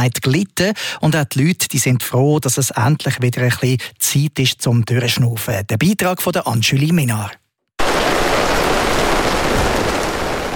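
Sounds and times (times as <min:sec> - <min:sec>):
speech: 0:00.0 - 0:07.4
steady dense rainfall: 0:07.8 - 0:10.5.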